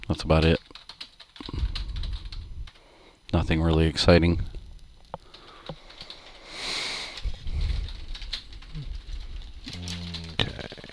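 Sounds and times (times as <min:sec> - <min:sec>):
steady hiss: 0:00.0 - 0:10.9
speech: 0:00.1 - 0:00.8, 0:03.3 - 0:04.5
typing on a computer keyboard: 0:00.1 - 0:02.8, 0:05.0 - 0:06.5, 0:07.1 - 0:10.9.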